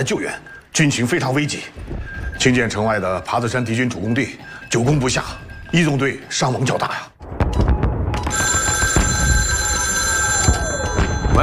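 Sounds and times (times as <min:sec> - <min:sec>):
speech: 0:00.0 - 0:07.4
telephone ringing with an electric bell tone: 0:08.2 - 0:11.4.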